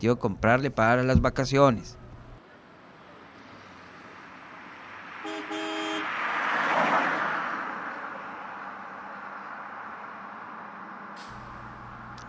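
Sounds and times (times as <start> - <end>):
speech: 0.0 - 2.0
street traffic rumbling: 0.0 - 12.2
car passing: 1.9 - 12.2
short car horn honk: 5.2 - 6.2.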